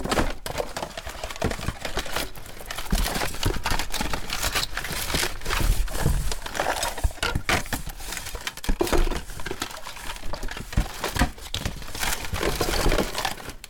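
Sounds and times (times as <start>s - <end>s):
rummaging through junk: 0.0s - 13.6s.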